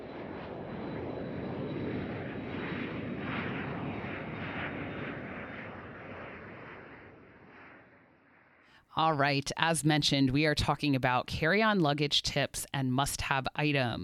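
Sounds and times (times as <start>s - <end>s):
airplane engine roar while taking off: 0.0s - 8.5s
speech: 9.0s - 14.0s.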